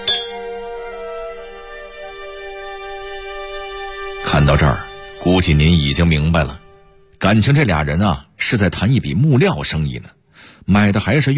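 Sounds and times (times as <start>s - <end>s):
glasses clinking in a toast: 0.0s - 0.5s
speech: 4.4s - 6.6s, 7.2s - 11.3s.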